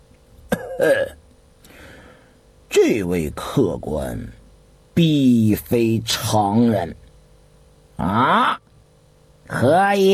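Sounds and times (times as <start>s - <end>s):
light cough clearing the throat: 0.5s - 1.2s
speech: 0.8s - 1.2s, 2.8s - 4.4s, 5.0s - 7.0s, 8.0s - 8.6s, 9.6s - 10.1s.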